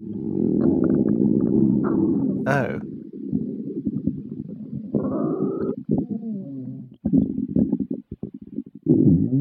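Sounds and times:
stomach gurgling with deep bubbling rumbles: 0.0s - 9.3s
person exclaiming: 2.5s - 2.8s
speech: 2.5s - 2.9s.

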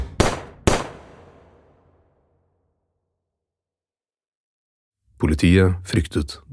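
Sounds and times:
gunshots: 0.0s - 2.1s
speech: 5.2s - 6.5s.

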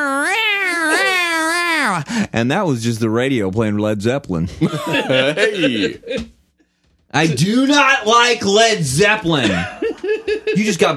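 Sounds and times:
person imitating a yowling cat: 0.0s - 2.1s
speech: 2.2s - 6.4s, 7.1s - 9.8s, 10.5s - 10.9s
laughter: 4.4s - 6.3s, 9.3s - 10.9s.

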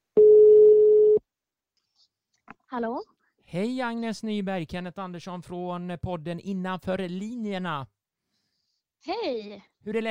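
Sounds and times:
outgoing phone call ringback tone: 0.2s - 1.2s
speech: 2.7s - 8.0s, 9.0s - 10.1s.

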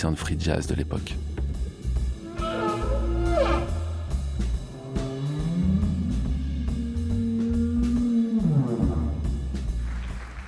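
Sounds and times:
speech: 0.0s - 1.3s
rumbling underwater background: 0.0s - 9.9s
humpback whale song: 2.1s - 9.4s.

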